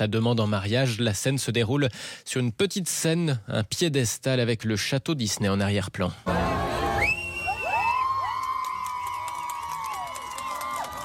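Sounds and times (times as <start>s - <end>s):
speech: 0.0s - 6.5s
crowd cheering at a marriage proposal on a small stage: 6.3s - 11.0s
high-pitched whoops and drawn-out shouts: 6.5s - 11.0s.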